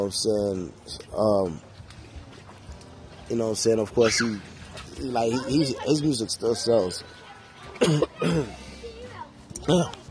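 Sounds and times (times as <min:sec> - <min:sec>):
speech: 0:00.0 - 0:01.7, 0:03.3 - 0:07.2, 0:07.8 - 0:08.6, 0:09.7 - 0:10.0
coughing and throat clearing from a dry throat: 0:07.8 - 0:08.6, 0:09.6 - 0:10.0.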